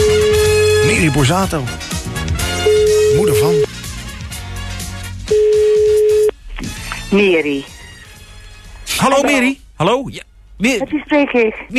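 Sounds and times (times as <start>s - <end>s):
telephone tone as a call is dialed and rings: 0.0s - 1.0s, 2.6s - 3.7s, 5.3s - 6.4s
faint music: 0.0s - 11.7s
speech: 1.0s - 1.9s, 2.8s - 3.6s, 7.1s - 7.7s, 9.0s - 11.7s.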